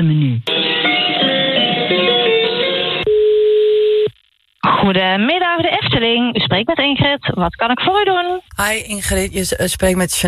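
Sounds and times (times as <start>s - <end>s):
telephone line tones while placing a call: 0.5s - 4.2s
speech: 4.9s - 10.2s.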